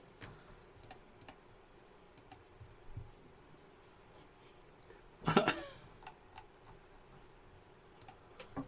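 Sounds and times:
faint clicks: 0.2s - 1.4s, 2.1s - 2.5s, 8.0s - 8.5s
raspy throat clearing: 5.3s - 5.8s.

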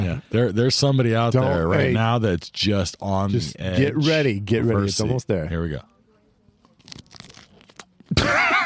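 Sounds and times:
speech: 0.0s - 5.9s
chips with guacamole being bitten and chewed: 6.8s - 7.9s.

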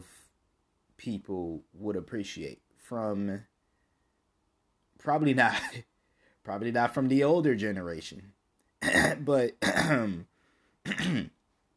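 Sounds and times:
speech: 1.0s - 3.5s, 5.0s - 11.4s
faint breath: 5.9s - 6.4s, 10.3s - 10.8s
throat clearing: 8.8s - 10.2s, 10.8s - 11.4s.

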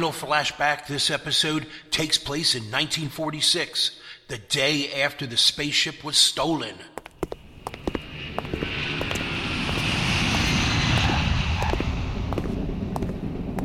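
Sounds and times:
speech: 0.0s - 6.9s
airplane engine droning: 7.1s - 13.6s.

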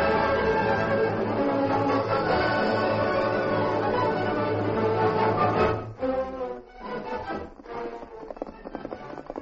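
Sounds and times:
horse hooves clip-clopping as a rider travels along a trail: 0.2s - 9.4s.

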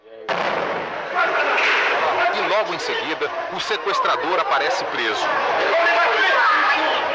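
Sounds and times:
police explosive blasting apartment door: 0.3s - 2.3s
rumbling debris: 0.3s - 2.6s
speech: 2.5s - 7.1s.

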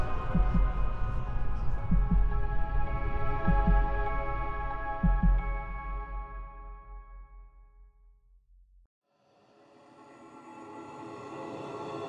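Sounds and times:
deep pounding heartbeat sound effect: 0.0s - 6.1s.

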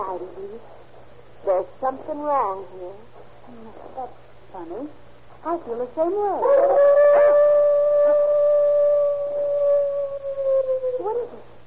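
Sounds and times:
speech: 0.0s - 7.3s
animal howling: 6.4s - 11.4s.

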